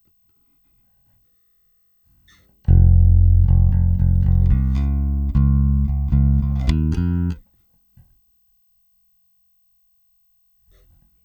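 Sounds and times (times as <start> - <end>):
electric bass DI: 2.7 - 7.4.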